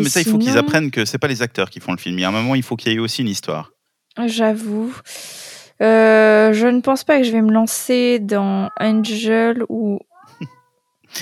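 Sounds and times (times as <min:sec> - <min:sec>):
speech: 0:00.0 - 0:11.2
cat meowing: 0:10.1 - 0:10.8.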